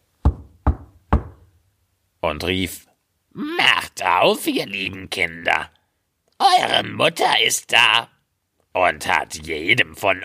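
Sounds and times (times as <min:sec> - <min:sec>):
knocking on the wooden front door of a house: 0:00.2 - 0:01.5
speech: 0:02.2 - 0:05.8, 0:06.4 - 0:08.1, 0:08.7 - 0:10.2.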